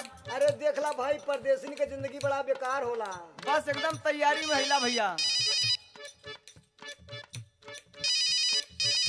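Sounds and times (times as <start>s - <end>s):
speech: 0.3s - 5.3s
phone ringtone while placing a call: 4.4s - 6.2s, 8.0s - 9.0s.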